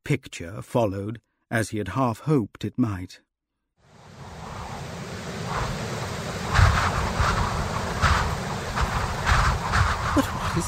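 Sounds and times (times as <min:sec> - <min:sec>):
speech: 0:00.1 - 0:03.3, 0:10.2 - 0:10.6
roaring wind gusts buffeting the microphone: 0:03.9 - 0:10.6.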